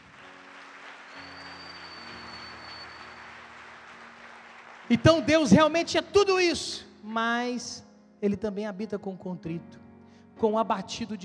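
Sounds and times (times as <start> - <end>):
crowd applauding with dense clapping: 0.0 - 5.9
speech: 4.9 - 9.8, 10.4 - 11.2.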